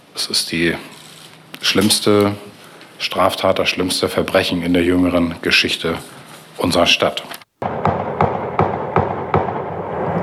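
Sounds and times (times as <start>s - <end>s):
speech: 0.2s - 0.9s, 1.6s - 7.4s
volley of gunshots at night recorded on a phone: 7.6s - 10.2s.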